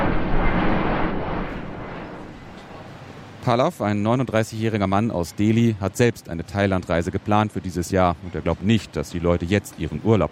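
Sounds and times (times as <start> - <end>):
jet airplane passing overhead: 0.0 - 3.3
speech: 3.4 - 10.3.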